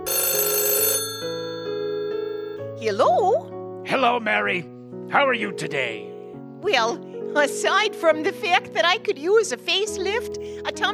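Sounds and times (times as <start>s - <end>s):
telephone bell ringing in a living room: 0.0s - 2.8s
speech: 2.8s - 10.9s.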